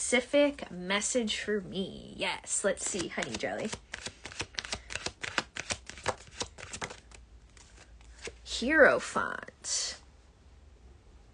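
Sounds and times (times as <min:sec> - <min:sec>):
speech: 0:00.0 - 0:04.1, 0:08.6 - 0:10.0
tarot cards shuffled by hand: 0:02.8 - 0:08.5.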